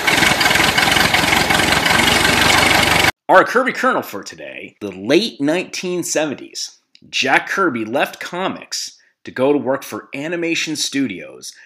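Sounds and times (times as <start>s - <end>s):
tractor engine starting and idling: 0.0s - 3.1s
speech: 3.3s - 11.6s.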